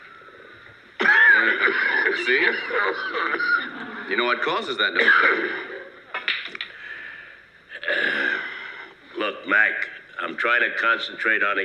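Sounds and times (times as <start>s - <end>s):
loud harsh throaty cough: 1.0s - 1.9s, 5.0s - 5.8s, 7.8s - 8.4s
laughter: 1.0s - 6.1s
speech: 1.5s - 5.6s, 10.4s - 11.6s.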